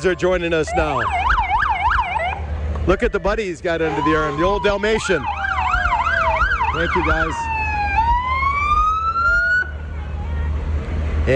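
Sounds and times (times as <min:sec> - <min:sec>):
speech: 0:00.0 - 0:01.4, 0:02.8 - 0:05.4, 0:06.7 - 0:07.5
fire department brush truck electronic siren wailing: 0:00.0 - 0:02.4, 0:03.9 - 0:09.8
fire department brush truck low engine rumble: 0:00.0 - 0:11.3.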